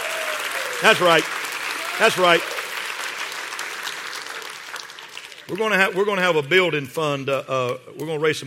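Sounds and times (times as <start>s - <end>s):
church audience clapping: 0.0s - 6.4s
speech: 0.8s - 1.4s, 2.0s - 2.6s, 5.5s - 8.4s.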